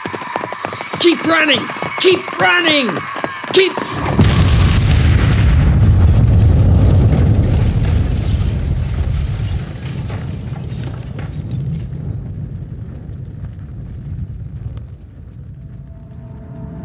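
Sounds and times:
speech: 1.0s - 3.9s
propane flamethrower tank bursting into a plasma fireball: 3.9s - 16.8s.

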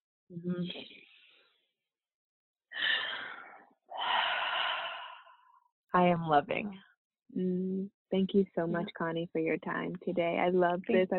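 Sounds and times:
speech: 0.3s - 1.1s, 5.9s - 11.1s
deep breaths taken together: 2.8s - 5.6s.

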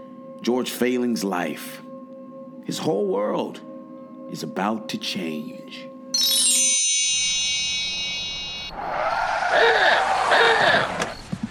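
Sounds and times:
speech: 0.4s - 1.9s, 2.7s - 3.7s, 4.3s - 5.9s
steady ringing tone: 6.2s - 8.8s
car rolling up and skidding to a stop with tires screeching: 8.7s - 11.3s.

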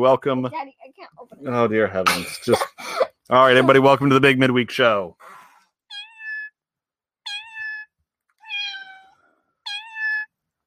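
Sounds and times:
speech: 0.0s - 0.7s, 1.4s - 2.7s, 3.3s - 5.2s
cat meowing: 5.9s - 6.5s, 7.3s - 10.3s.

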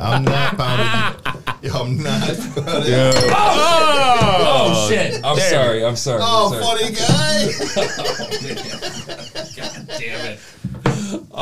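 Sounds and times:
laughter: 0.0s - 5.6s, 6.9s - 10.4s
speech: 0.0s - 11.4s
shot glasses clinking in a toast: 3.1s - 4.0s.

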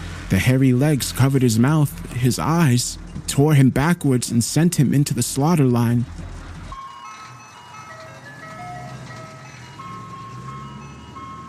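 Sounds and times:
ice cream truck engine rumble: 0.0s - 11.4s
speech: 0.3s - 6.2s
ice cream truck jingle from a roof-mounted loudspeaker: 6.3s - 11.4s.

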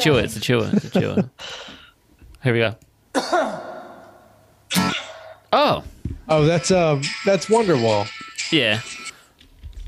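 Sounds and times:
speech: 0.0s - 1.8s, 2.4s - 3.7s, 4.7s - 9.0s
single throaty cough: 3.2s - 4.1s.

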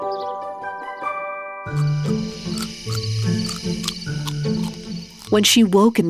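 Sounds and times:
speech: 1.7s - 3.9s, 5.3s - 6.0s
crickets chirping: 1.7s - 6.0s
dense rumbling nature ambience: 1.7s - 6.0s.

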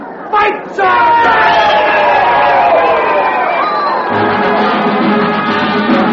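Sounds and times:
large crowd cheering and shouting at a bonfire rally: 0.0s - 6.0s
speech: 0.4s - 1.1s.

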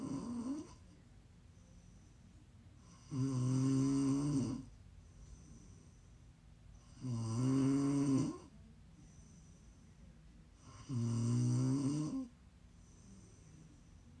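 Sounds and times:
snoring: 0.0s - 0.8s, 2.8s - 4.7s, 6.8s - 8.5s, 10.6s - 14.1s.

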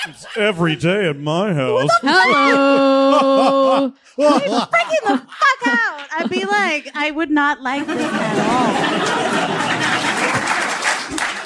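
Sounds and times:
laughter: 0.0s - 7.2s, 7.8s - 11.4s
speech: 0.0s - 9.4s
crowd applauding: 8.0s - 11.4s.

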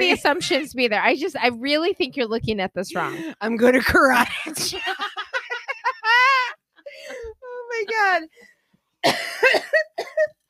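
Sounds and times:
laughter: 0.0s - 0.7s, 4.4s - 7.3s
speech: 0.0s - 5.2s, 7.8s - 10.4s
harsh coughing fit with rasping cough and sharp hacks: 9.0s - 10.3s.

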